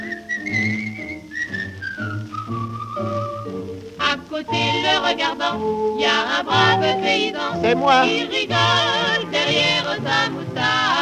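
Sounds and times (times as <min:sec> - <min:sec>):
person whistling a tune: 0:00.0 - 0:03.8
instrumental accompaniment with a soft rhythmic pulse: 0:00.0 - 0:10.9
speech: 0:04.4 - 0:10.9.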